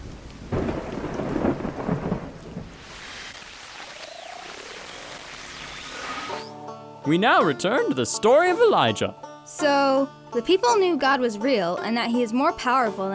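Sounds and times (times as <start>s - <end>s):
thunder rumbling: 0.5s - 6.4s
steady hissing rainfall: 1.2s - 6.5s
speech: 7.1s - 13.1s.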